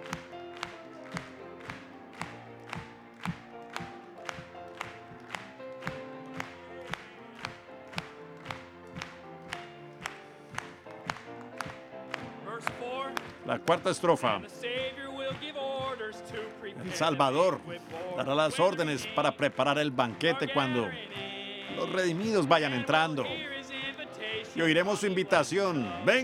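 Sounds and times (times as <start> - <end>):
crowd clapping in a steady even beat: 0.0 - 26.2
group singing a Spanish-language religious song: 5.9 - 8.8, 12.3 - 26.2
speech: 13.5 - 14.7, 17.0 - 21.1, 21.7 - 23.5, 24.6 - 26.2.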